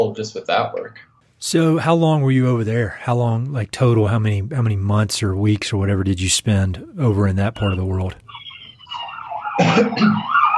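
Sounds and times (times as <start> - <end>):
speech: 0.0 - 8.2, 8.9 - 10.4
wailing sirens outside an office: 8.3 - 10.5.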